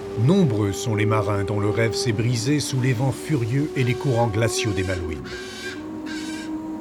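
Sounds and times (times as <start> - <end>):
speech: 0.2 - 5.6
rare bird of prey screeching: 3.8 - 6.6.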